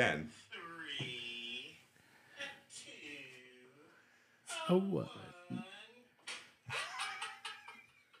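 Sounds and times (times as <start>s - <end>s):
speech: 0.0s - 0.4s, 1.0s - 1.2s, 4.7s - 5.7s
open-hand slap to the face: 6.3s - 6.6s
laughter: 6.7s - 8.1s.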